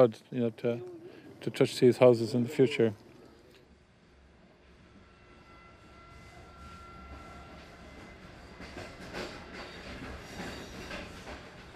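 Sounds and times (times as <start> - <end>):
speech: 0.0 - 3.0
overnight train rolling on rails towards Lahore: 0.0 - 11.7
train wheels clickety-clack over rail joints: 7.9 - 11.7.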